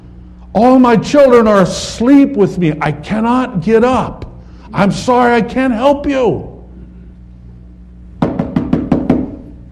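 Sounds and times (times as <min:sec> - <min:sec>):
speech: 0:00.5 - 0:06.5
neighbor knocking on a wooden door: 0:08.2 - 0:09.4.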